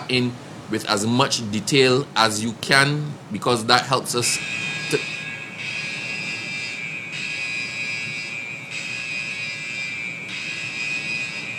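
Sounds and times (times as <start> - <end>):
speech: 0.1 - 5.2
shrill high-pitched electronic alarm: 4.2 - 11.5.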